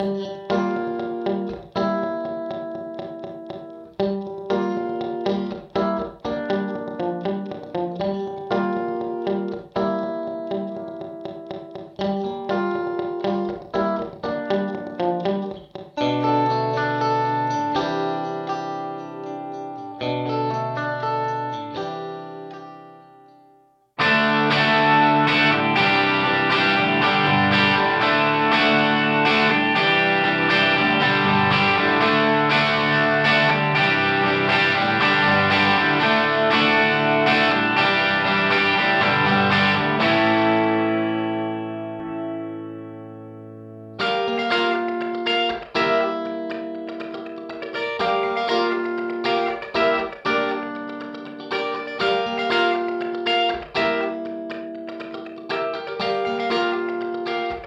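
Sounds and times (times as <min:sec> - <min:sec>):
guitar recorded in a wood room: 0:00.0 - 0:57.6.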